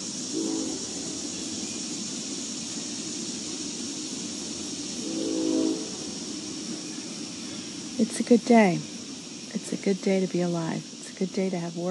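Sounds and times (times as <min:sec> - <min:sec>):
train rumbling through town: 0:00.0 - 0:11.8
train horn blasts: 0:00.3 - 0:01.4, 0:05.0 - 0:06.3
speech: 0:08.0 - 0:08.9, 0:09.8 - 0:11.8.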